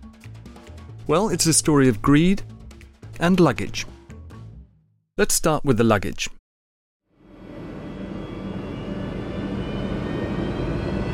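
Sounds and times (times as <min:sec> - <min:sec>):
speech: 0:01.1 - 0:02.5, 0:03.2 - 0:03.9, 0:05.2 - 0:06.4
faint whine of a jet aircraft engine: 0:07.2 - 0:11.1
small-diameter Pratt & Whitney JT8D jet aircraft engine roar: 0:07.2 - 0:11.1.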